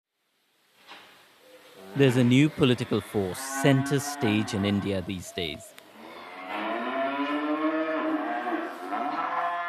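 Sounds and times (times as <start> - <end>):
cow mooing in a long bellow: 1.8 - 5.1, 6.0 - 9.6
speech: 2.0 - 5.8.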